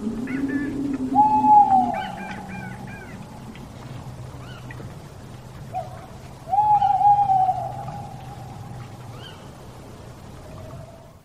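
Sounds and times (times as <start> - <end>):
large owl hooting: 0.0 - 4.8, 5.7 - 9.5
low rumble: 0.0 - 11.2.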